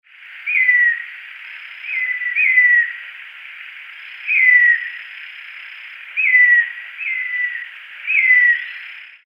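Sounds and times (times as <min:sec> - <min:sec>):
Attila phoenicurus whistle: 0:00.4 - 0:01.1, 0:01.7 - 0:03.0, 0:04.2 - 0:05.0, 0:06.2 - 0:08.9.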